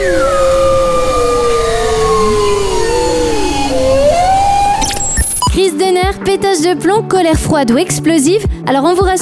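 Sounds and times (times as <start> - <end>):
bowhead whale song: 0.0 - 5.5
speech: 6.3 - 9.2.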